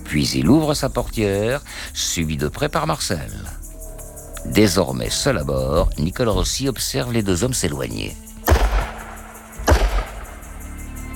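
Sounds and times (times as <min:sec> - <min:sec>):
speech: 0:00.1 - 0:03.6, 0:04.4 - 0:08.3
gunshots across open ground: 0:08.4 - 0:10.4.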